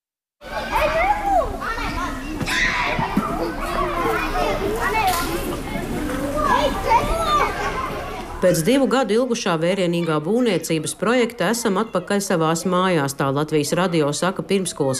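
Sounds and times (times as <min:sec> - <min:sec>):
young children shrieking: 0:00.4 - 0:05.1, 0:06.3 - 0:08.8
young children chattering and calling out outdoors in kindergarten yard: 0:00.4 - 0:14.9
speech: 0:08.4 - 0:14.9.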